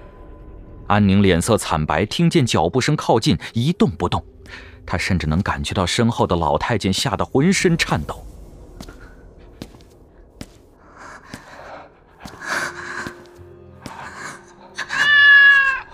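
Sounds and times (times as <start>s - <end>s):
speech: 0.9s - 8.9s
Persian cat meowing: 14.8s - 15.9s.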